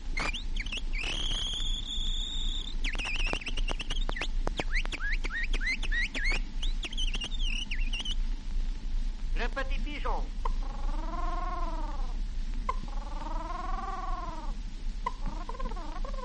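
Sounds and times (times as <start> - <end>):
steady low hum: 0.0 - 16.2
human whistler imitating nightingale song: 0.2 - 8.2.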